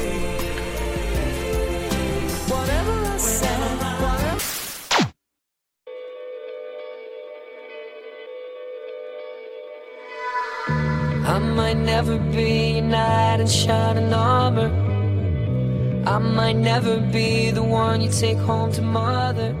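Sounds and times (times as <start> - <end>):
pop song with sung melody over full backing: 0.0 - 4.8, 10.0 - 15.3, 15.9 - 19.5
speech: 11.9 - 15.0, 16.1 - 19.5.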